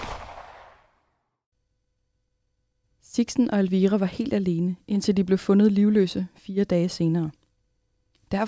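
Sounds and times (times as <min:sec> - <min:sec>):
loud sharp gunshot with long decay: 0:00.0 - 0:00.9
speech: 0:03.2 - 0:07.4.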